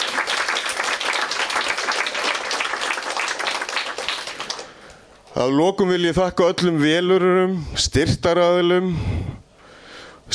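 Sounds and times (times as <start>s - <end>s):
crowd applauding volunteers at a gathering of an association for the blind: 0.0s - 5.0s
speech: 5.4s - 9.3s.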